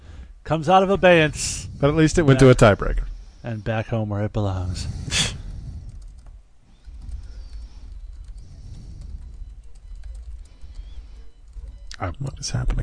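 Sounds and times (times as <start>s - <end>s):
soft hum: 0.0s - 12.8s
speech: 0.5s - 5.2s, 12.0s - 12.8s
typing on a computer keyboard: 5.9s - 12.0s.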